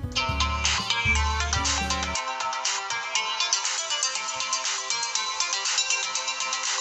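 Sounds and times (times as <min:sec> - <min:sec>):
musical phone ringtone while a call is placed: 0:00.1 - 0:06.7.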